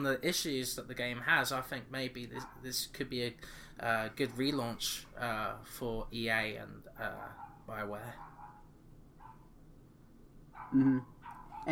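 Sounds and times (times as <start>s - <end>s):
speech: 0.0s - 8.3s, 10.7s - 11.7s
dog barking: 2.4s - 2.6s, 7.3s - 7.6s, 8.2s - 9.5s, 10.6s - 11.7s.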